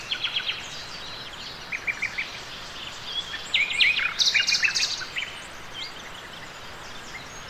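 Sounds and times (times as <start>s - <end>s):
several nightingales singing: 0.0s - 7.4s
steady background hiss: 0.0s - 7.4s.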